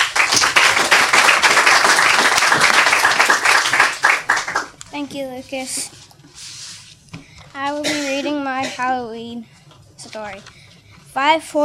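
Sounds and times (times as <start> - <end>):
audience applause for a young author at a story reading event: 0.0 - 4.8
speech: 5.0 - 6.0, 7.6 - 10.6, 11.2 - 11.6.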